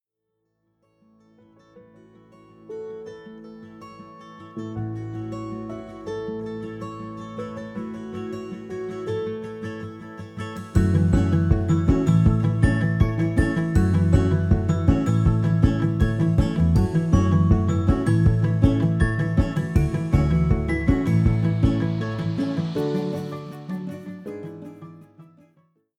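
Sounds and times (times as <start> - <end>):
anthem music: 10.8 - 24.8.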